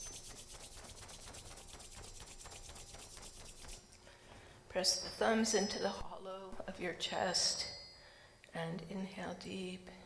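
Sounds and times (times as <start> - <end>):
palms rubbing briskly together: 0.0 - 3.9
speech: 4.7 - 7.7, 8.6 - 10.0.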